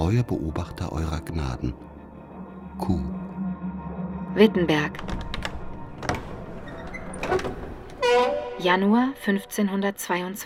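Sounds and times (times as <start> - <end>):
speech: 0.0 - 2.0, 2.8 - 3.2, 4.4 - 5.2, 7.2 - 10.4
old door knocking and scraping on its hinges: 5.0 - 8.4.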